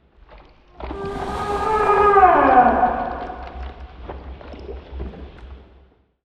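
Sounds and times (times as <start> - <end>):
elder tiyanki moving in combat transition: 0.8 - 4.1.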